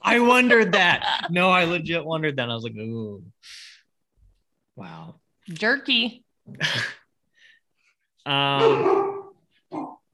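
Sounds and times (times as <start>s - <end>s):
speech: 0.1s - 3.7s, 4.8s - 7.0s, 8.2s - 9.1s
female dog barking for jerky: 8.6s - 10.0s.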